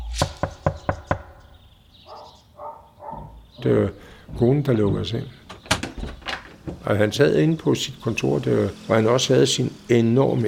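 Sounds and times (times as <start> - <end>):
firm knocks on a house door: 0.1 - 1.6
speech: 3.6 - 5.4, 6.8 - 10.4.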